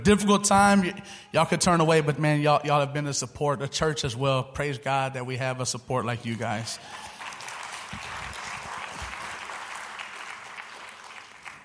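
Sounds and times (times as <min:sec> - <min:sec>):
speech: 0:00.0 - 0:07.1
church audience clapping: 0:06.2 - 0:11.6.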